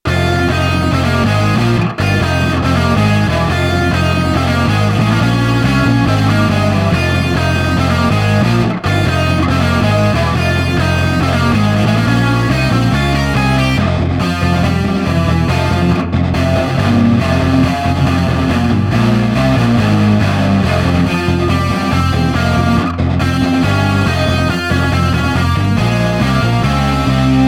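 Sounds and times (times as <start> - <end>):
chords and lead melody: 0.0 - 27.4.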